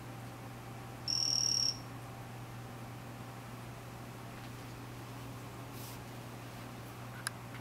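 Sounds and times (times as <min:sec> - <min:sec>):
quiet background hum: 0:00.0 - 0:07.5
Vanzolini's poison frog Ranitomeya vanzolinii high flat buzzy trill: 0:01.1 - 0:01.8.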